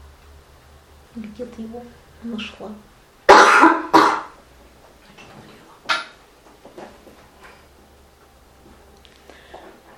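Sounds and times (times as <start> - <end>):
speech: 1.2 - 2.9
throat clearing: 3.3 - 4.3
harsh coughs: 3.3 - 4.4.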